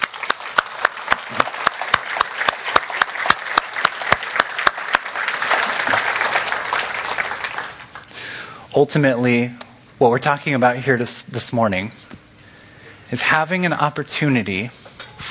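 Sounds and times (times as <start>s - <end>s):
church audience applauding: 0.0s - 8.1s
speech: 8.8s - 12.1s, 13.1s - 15.3s.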